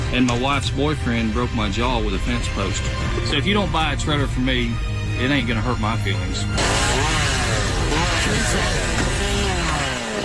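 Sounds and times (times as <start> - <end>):
speech: 0.1 - 7.2, 8.2 - 9.0
chainsaw cutting down a tree: 6.6 - 10.2.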